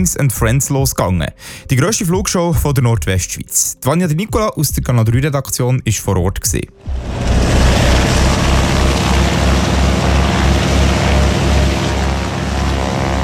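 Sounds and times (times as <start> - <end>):
speech: 0.0 - 7.4
propeller aircraft engines running before an air show in Grenchen: 6.8 - 13.2.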